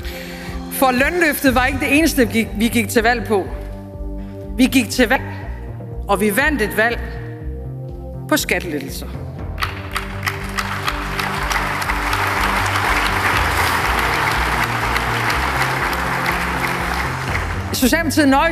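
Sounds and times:
speech: 0.8 - 3.6, 4.6 - 5.3, 6.1 - 7.1, 8.3 - 9.3, 17.8 - 18.4
muted applause from a large audience in a hall: 9.6 - 17.8.

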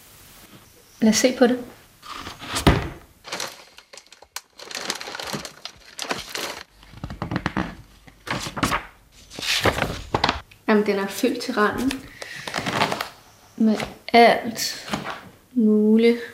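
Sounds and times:
speech: 1.0 - 1.8, 10.7 - 12.1, 13.6 - 14.9, 15.6 - 16.3
papers crinkling and rustling in a box: 2.1 - 10.4, 11.8 - 13.9.

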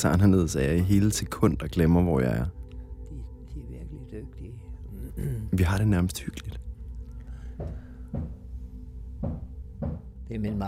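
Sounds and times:
speech: 0.0 - 2.6, 5.2 - 6.6, 10.3 - 10.6
dull knocks from the basement: 7.6 - 8.4, 9.2 - 10.2.

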